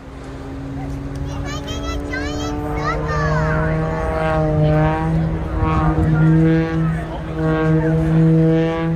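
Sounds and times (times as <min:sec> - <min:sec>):
aerobatic propeller plane engine droning overhead: 0:00.0 - 0:08.9
child chattering excitedly: 0:01.2 - 0:04.0.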